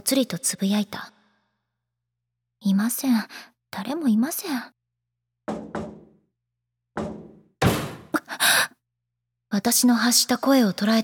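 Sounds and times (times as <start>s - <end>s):
speech: 0.1s - 1.2s, 2.6s - 4.8s, 9.5s - 11.0s
heavy violent pounding on a door: 5.5s - 6.2s, 7.0s - 8.1s.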